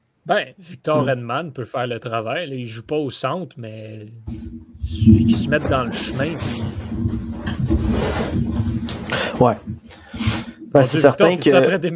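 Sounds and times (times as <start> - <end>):
speech: 0.2 - 4.4, 5.0 - 7.2, 8.0 - 9.8, 10.8 - 11.9
chair sliding across the floor: 4.9 - 9.0.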